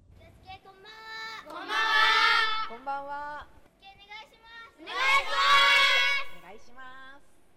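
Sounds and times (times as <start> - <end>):
children shouting calls during volleyball practice in a reverberant gym: 0.9 - 2.7, 4.8 - 6.4
long group yells of children: 1.5 - 2.7, 4.8 - 6.4.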